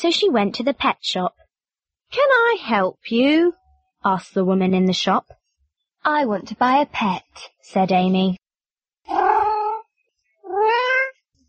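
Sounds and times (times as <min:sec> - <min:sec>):
speech: 0:00.0 - 0:01.4, 0:02.1 - 0:05.4, 0:06.0 - 0:08.4
kitten meowing: 0:09.1 - 0:09.8.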